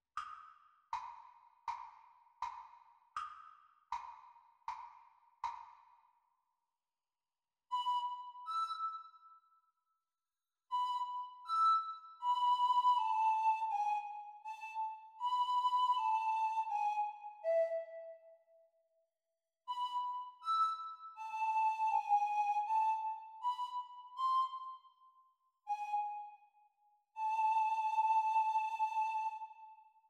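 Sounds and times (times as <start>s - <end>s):
descant recorder practice: 7.7s - 9.1s, 10.7s - 18.3s, 19.7s - 25.0s, 25.7s - 26.6s, 27.2s - 30.0s.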